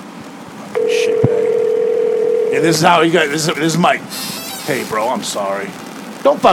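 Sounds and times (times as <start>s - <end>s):
steady electronic line tone of an outgoing phone call: 0.8s - 2.8s
speech: 2.5s - 6.5s.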